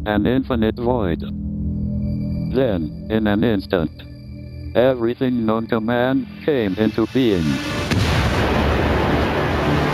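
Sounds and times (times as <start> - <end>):
speech: 0.0 - 1.5, 2.5 - 4.1, 4.7 - 7.8
huge Big Bang explosion effect with heavy low rumble: 7.4 - 9.9.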